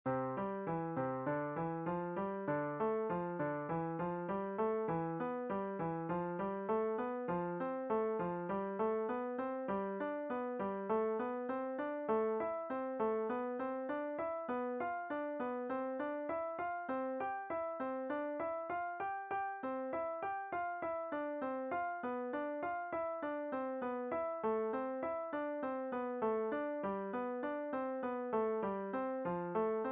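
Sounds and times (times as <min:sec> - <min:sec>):
piano exercises: 0:00.1 - 0:29.8.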